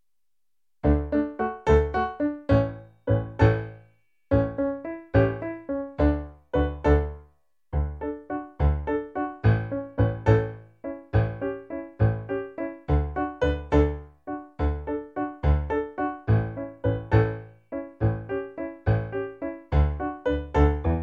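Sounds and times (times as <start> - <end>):
piano piece: 0.8 - 21.0.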